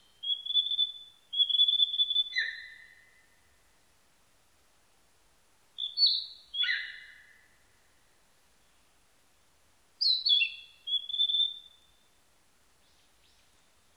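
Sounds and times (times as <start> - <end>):
Narcissus flycatcher whistled song: 0.0 - 3.2, 5.8 - 7.4, 10.0 - 12.1.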